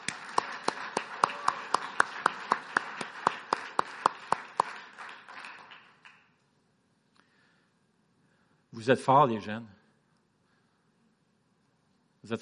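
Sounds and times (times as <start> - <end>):
audience clapping together in a steady quick rhythm: 0.0 - 6.4
speech: 8.8 - 9.8, 12.3 - 12.4.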